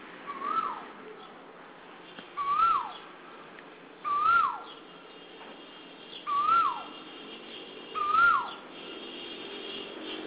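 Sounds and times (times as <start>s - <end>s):
Asian koel calling with a clear whistled note: 0.3s - 0.9s, 2.4s - 3.1s, 4.0s - 4.8s, 6.1s - 7.0s, 8.0s - 8.6s.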